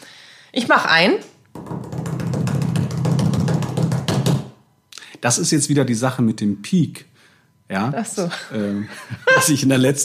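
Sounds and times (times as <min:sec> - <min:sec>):
speech: 0:00.5 - 0:01.3, 0:05.2 - 0:07.1, 0:07.7 - 0:10.0
hand-tapped drumroll on a hard surface: 0:01.6 - 0:04.6
laughter: 0:08.8 - 0:09.7.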